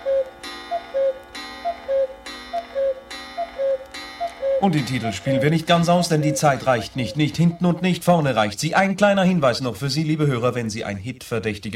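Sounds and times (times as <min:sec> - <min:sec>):
clock striking twelve noon: 0:00.0 - 0:08.4
clock ticking: 0:00.0 - 0:09.6
speech: 0:04.6 - 0:11.7.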